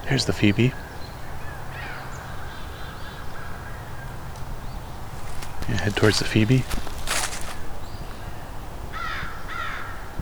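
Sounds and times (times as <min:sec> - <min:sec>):
steady outdoor hiss: 0:00.0 - 0:10.2
speech: 0:00.1 - 0:00.9, 0:05.9 - 0:06.9
American crow cawing: 0:00.7 - 0:10.2
brief burst of broadband noise: 0:05.2 - 0:08.2.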